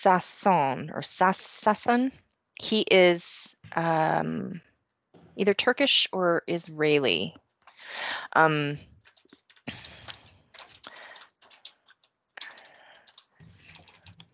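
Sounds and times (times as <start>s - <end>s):
speech: 0.0s - 4.7s, 5.4s - 8.9s
rapid typing on a computer keyboard: 9.0s - 14.3s.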